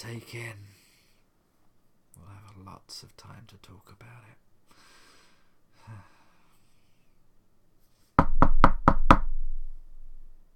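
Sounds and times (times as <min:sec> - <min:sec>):
speech: 0:00.0 - 0:00.8, 0:02.2 - 0:04.8, 0:05.9 - 0:06.2
faint breathy sound: 0:04.7 - 0:07.2
knocking on a door: 0:08.2 - 0:09.8
low resonant thud: 0:08.2 - 0:10.3.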